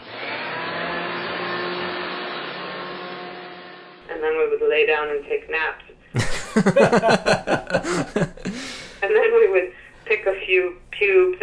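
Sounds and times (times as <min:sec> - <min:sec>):
vacuum cleaner running: 0:00.0 - 0:03.9
speech: 0:04.2 - 0:11.4
laughter: 0:06.2 - 0:08.8.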